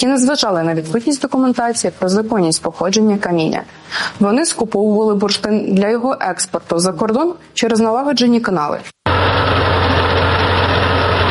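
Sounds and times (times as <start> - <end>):
speech: 0.0 - 9.0
drilling rig boring exploration wells for amber samples: 9.1 - 11.2.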